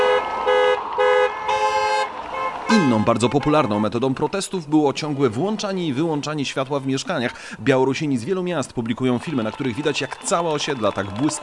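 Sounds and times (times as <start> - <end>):
car horns honking: 0.0 - 4.0, 9.3 - 10.2
traffic din: 0.0 - 11.4
speech: 2.7 - 11.4.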